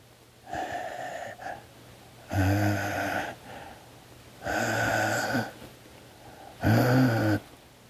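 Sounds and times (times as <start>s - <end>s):
faint heavy wheezy breathing behind a bedroom door: 0.4s - 7.6s.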